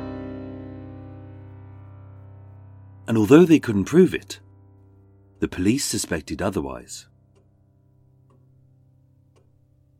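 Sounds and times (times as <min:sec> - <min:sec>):
speech: 0:03.1 - 0:04.4, 0:05.4 - 0:07.1
clock ticking: 0:05.3 - 0:09.9.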